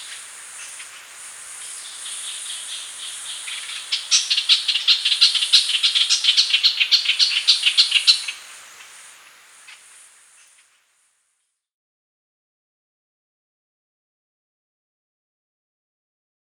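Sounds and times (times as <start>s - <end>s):
ochraceous bulbul harsh rapid chattering calls: 0.0s - 10.6s
steady high insect drone: 0.0s - 11.4s.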